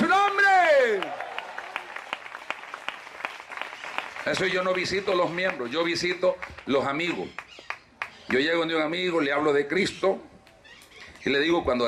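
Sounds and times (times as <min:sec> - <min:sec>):
audience applauding: 0:00.0 - 0:08.2
speech: 0:04.3 - 0:07.7, 0:08.3 - 0:10.3, 0:11.2 - 0:11.8.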